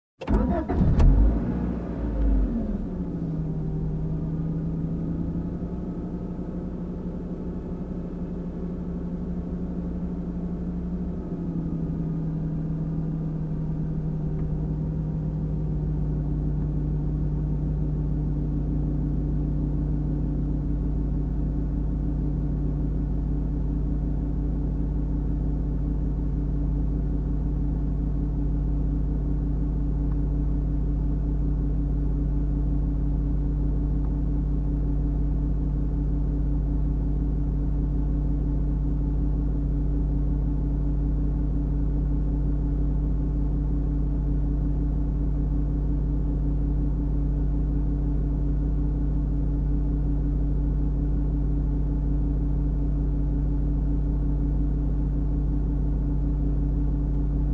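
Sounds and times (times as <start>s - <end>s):
car ignition: 0.2s - 3.2s
car engine idling: 0.2s - 57.5s.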